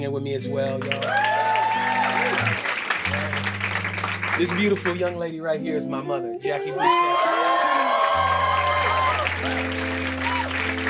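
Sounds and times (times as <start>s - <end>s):
speech: 0.0s - 1.9s, 4.0s - 7.4s
crowd applauding: 0.8s - 5.1s, 6.6s - 10.8s.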